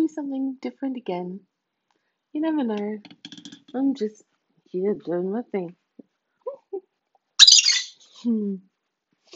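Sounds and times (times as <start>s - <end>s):
speech: 0.1s - 1.5s, 2.3s - 5.8s, 8.2s - 8.7s
pet bird short lower whistled call: 7.4s - 7.9s
pet bird chirping: 7.4s - 8.1s.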